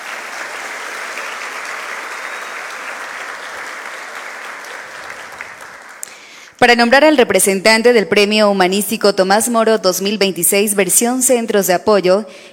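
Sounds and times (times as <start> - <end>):
sustained applause from a sizable audience: 0.0 - 6.4
speech: 6.6 - 12.5.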